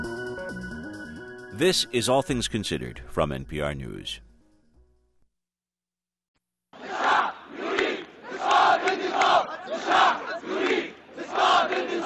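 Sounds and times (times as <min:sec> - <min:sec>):
speech: 0:01.6 - 0:04.3
large protest crowd chanting in Tahrir Square in Cairo Egypt: 0:06.8 - 0:12.0.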